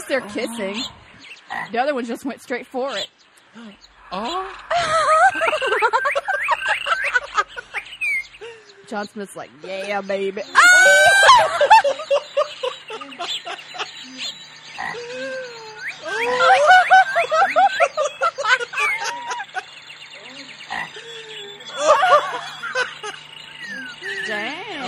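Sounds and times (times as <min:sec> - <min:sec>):
laughter: 0:00.0 - 0:01.0, 0:04.1 - 0:08.9, 0:10.5 - 0:20.4, 0:21.0 - 0:24.8
human voices: 0:00.0 - 0:01.1, 0:02.9 - 0:05.8, 0:08.4 - 0:11.8, 0:14.0 - 0:18.1, 0:20.2 - 0:22.8, 0:23.6 - 0:24.8
birds squawking and chattering: 0:00.0 - 0:24.8
speech: 0:00.1 - 0:06.2, 0:08.9 - 0:12.3, 0:13.5 - 0:17.9.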